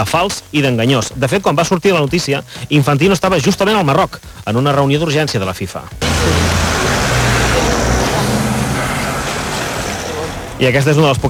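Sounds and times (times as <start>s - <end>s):
speech: 0.0s - 7.0s, 10.6s - 11.2s
car engine rumbling as the vehicle pulls away: 6.0s - 11.2s
crowd noise: 6.0s - 11.2s
road noise: 6.0s - 11.2s.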